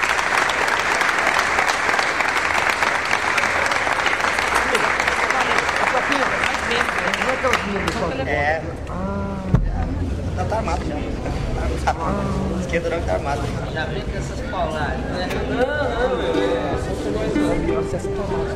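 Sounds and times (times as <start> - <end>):
audience applause for a composer: 0.0 - 8.2
faint voices murmuring: 2.6 - 18.5
speech: 7.7 - 9.6, 10.4 - 18.5.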